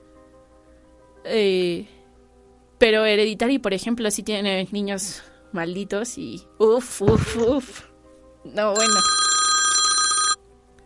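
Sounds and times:
speech: 0:01.2 - 0:02.0, 0:02.8 - 0:09.2
telephone bell ringing: 0:08.8 - 0:10.4.

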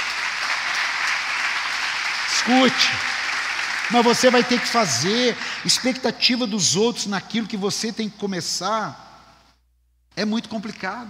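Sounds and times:
audience applauding: 0:00.0 - 0:06.2
speech: 0:02.4 - 0:03.1, 0:03.9 - 0:09.0, 0:10.2 - 0:11.0.

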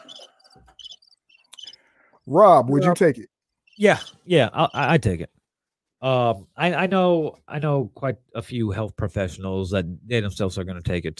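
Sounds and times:
cricket chirping sound effect: 0:00.0 - 0:04.8
speech: 0:02.3 - 0:05.4, 0:06.0 - 0:11.1.

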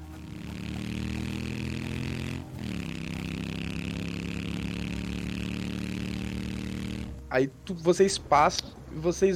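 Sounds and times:
motorcycle engines revving: 0:00.0 - 0:07.4
speech: 0:07.3 - 0:09.3.

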